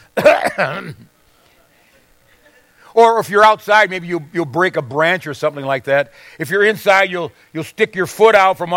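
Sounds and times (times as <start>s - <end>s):
throaty cough: 0.0s - 1.1s
speech: 0.2s - 1.1s, 3.0s - 8.7s.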